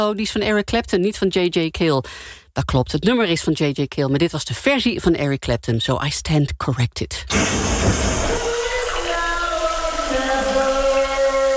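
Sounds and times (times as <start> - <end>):
speech: 0.0 - 8.5
shower running: 7.3 - 11.5.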